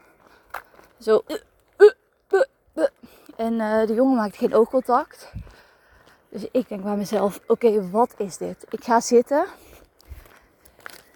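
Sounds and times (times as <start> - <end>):
speech: 1.0 - 1.5, 3.4 - 5.4, 6.3 - 9.6
voice imitating hiccupping: 1.3 - 3.0.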